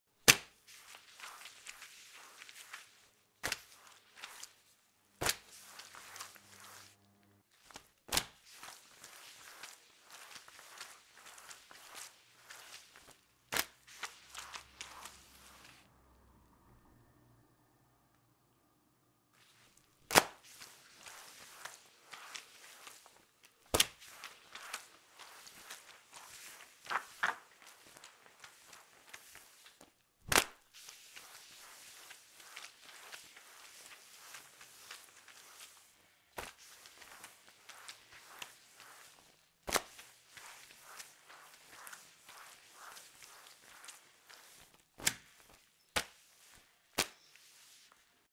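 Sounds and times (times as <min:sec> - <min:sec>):
mop: 0:00.2 - 0:15.9, 0:19.4 - 0:48.3.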